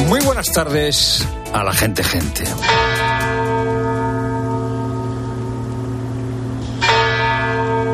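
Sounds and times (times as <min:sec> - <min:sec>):
speech: 0:00.2 - 0:03.1
church bells ringing: 0:02.6 - 0:07.9.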